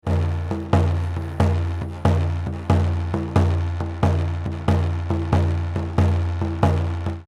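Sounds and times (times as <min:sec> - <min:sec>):
da Dum da Dum drum pattern: 0:00.0 - 0:07.2
Dane-zaa chants: 0:00.1 - 0:03.7.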